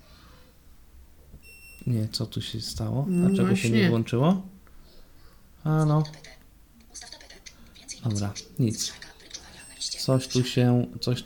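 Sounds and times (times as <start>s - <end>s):
clothes dryer electronic beep as smart mode is switched on: 1.4s - 1.9s, 3.1s - 3.9s, 9.5s - 10.6s
speech: 1.9s - 4.5s, 5.6s - 6.4s, 7.0s - 7.2s, 8.0s - 9.1s, 10.1s - 11.2s.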